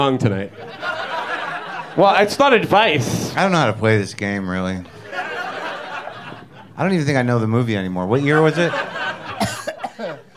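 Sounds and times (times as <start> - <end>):
speech: 0.0 - 0.9, 2.0 - 5.0, 6.8 - 8.9
laughter: 0.5 - 3.8, 4.8 - 10.3
person coughing in harsh bursts: 9.4 - 10.3.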